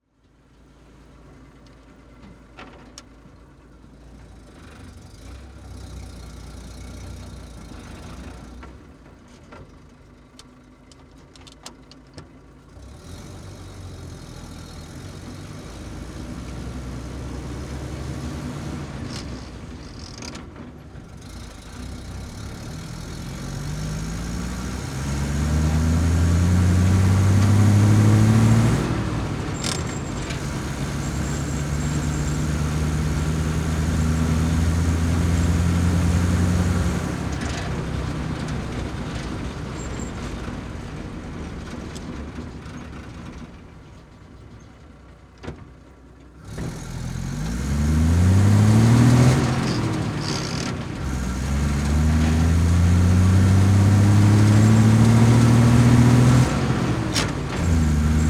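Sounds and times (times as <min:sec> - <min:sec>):
M16 halftrack driving at medium speed with gear shifts heard from interior: 0:04.2 - 0:43.8, 0:46.2 - 0:58.2.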